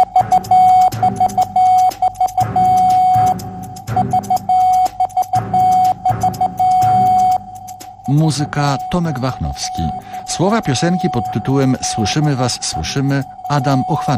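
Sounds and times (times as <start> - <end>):
Morse code beeps spelling out a radio call sign: 0.0 - 14.1
speech: 8.1 - 14.1.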